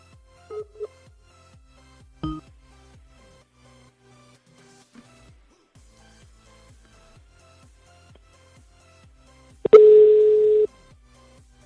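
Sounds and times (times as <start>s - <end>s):
telephone busy signal on a dialed call: 0.5s - 0.9s, 9.7s - 10.7s.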